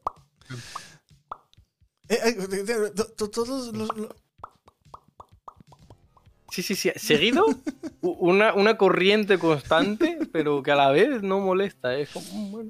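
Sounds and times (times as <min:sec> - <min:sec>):
wet mouth plops imitating rabbit droppings falling: 0:00.0 - 0:01.5, 0:03.8 - 0:06.0
speech: 0:00.5 - 0:00.8, 0:02.1 - 0:04.2, 0:06.6 - 0:12.6
loud laughter: 0:07.2 - 0:08.1.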